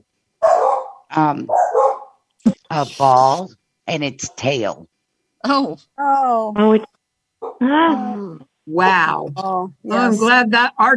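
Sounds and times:
dog barking and growling: 0.4 - 2.1
speech: 1.2 - 1.9, 2.8 - 6.9, 7.6 - 10.9.

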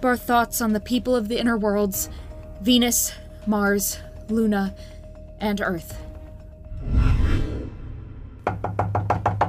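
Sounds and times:
speech: 0.0 - 6.1
low rumbling whoosh: 6.6 - 8.4
loud knocks on a door: 8.4 - 9.4.

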